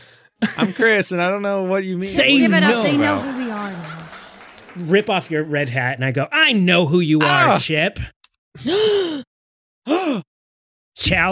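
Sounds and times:
laughter: 0:00.4 - 0:01.4, 0:02.0 - 0:05.8
speech: 0:00.6 - 0:03.9, 0:04.8 - 0:09.2, 0:11.0 - 0:11.2
person gasping in surprise: 0:08.6 - 0:09.3, 0:09.9 - 0:10.3.

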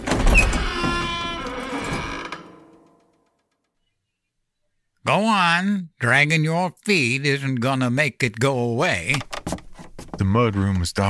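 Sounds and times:
door creaking open with groaning hinges: 0:00.0 - 0:03.6, 0:09.0 - 0:10.3
speech: 0:05.1 - 0:09.4, 0:10.2 - 0:11.0.

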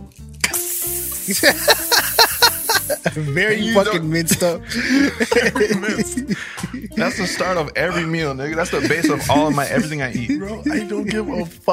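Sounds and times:
food sizzling in a hot pan: 0:00.4 - 0:03.0
laughter: 0:01.2 - 0:11.5
speech: 0:01.3 - 0:02.2, 0:03.0 - 0:11.7.

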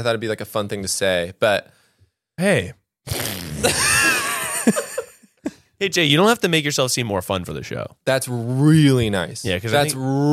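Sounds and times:
speech: 0:00.0 - 0:01.8, 0:02.4 - 0:05.0, 0:05.8 - 0:10.3
loud sputtering fart sound effect: 0:03.1 - 0:03.9.

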